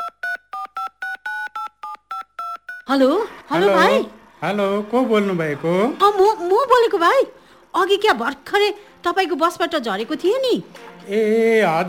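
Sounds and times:
telephone keypad tones dialing a number: 0:00.0 - 0:03.0
speech: 0:02.9 - 0:11.8.

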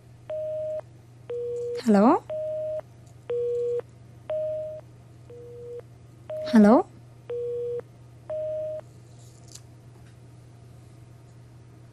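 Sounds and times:
faint low hum: 0:00.0 - 0:11.9
telephone busy tone after a dropped call on a phone-in line: 0:00.3 - 0:06.6, 0:07.3 - 0:08.8
speech: 0:01.8 - 0:02.3, 0:06.6 - 0:06.9.

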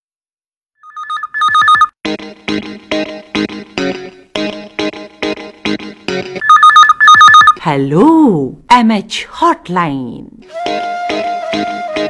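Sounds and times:
electronic telephone ring on a live phone-in radio program: 0:00.8 - 0:01.9, 0:06.4 - 0:07.6
speech: 0:07.7 - 0:11.0.

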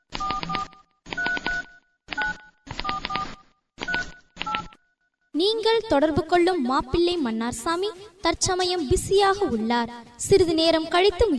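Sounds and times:
telephone keypad tones dialing a number: 0:00.1 - 0:04.8
speech: 0:05.4 - 0:11.3.

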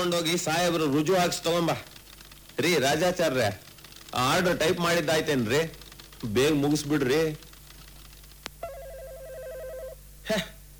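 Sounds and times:
speech: 0:00.0 - 0:01.9, 0:02.6 - 0:07.4, 0:10.3 - 0:10.5
electronic telephone ringing in an office: 0:08.6 - 0:10.0.

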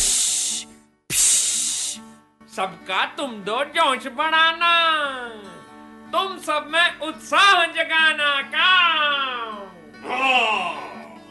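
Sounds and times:
snake hissing: 0:00.0 - 0:02.1
speech: 0:02.6 - 0:09.4, 0:10.1 - 0:10.8.

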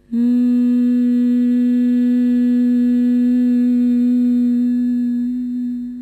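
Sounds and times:
bee-like hum of bhramari pranayama breathing with ears closed: 0:00.0 - 0:06.0.

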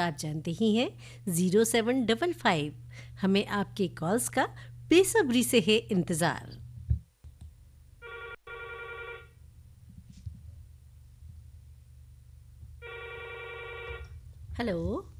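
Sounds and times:
speech: 0:00.0 - 0:06.6, 0:14.6 - 0:15.1
low hum: 0:00.0 - 0:15.1
telephone ringing with harmonic electronic trill: 0:08.0 - 0:09.4, 0:12.8 - 0:14.1.

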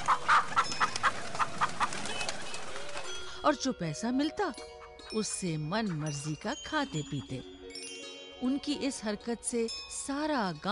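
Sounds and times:
village chickens clucking: 0:00.0 - 0:02.0
speech: 0:03.5 - 0:07.5, 0:08.4 - 0:10.7.

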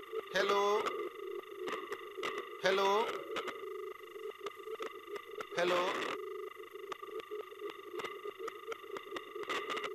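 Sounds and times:
steady buzzing electronic tone of a telephone line failing to connect: 0:00.0 - 0:09.9
speech: 0:00.4 - 0:01.2, 0:02.6 - 0:03.5, 0:05.6 - 0:06.2
sharp clicks and crackles on a telephone line: 0:04.4 - 0:05.6, 0:06.9 - 0:09.9.

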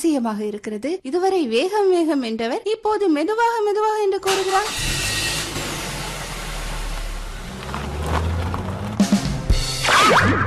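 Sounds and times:
speech: 0:00.0 - 0:05.0
car engine starting, revving and pulling away: 0:04.2 - 0:09.9.

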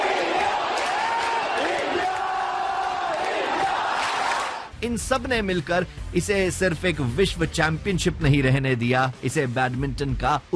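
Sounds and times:
large stadium crowd cheering and applauding in the stands: 0:00.0 - 0:04.7
scattered shouts from spectators: 0:00.0 - 0:04.7
speech: 0:04.8 - 0:10.5.

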